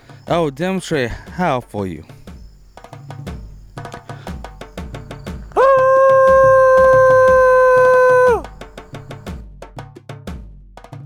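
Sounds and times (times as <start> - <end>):
speech: 0.3 - 2.1
person imitating a Sasquatch howl: 5.6 - 8.5.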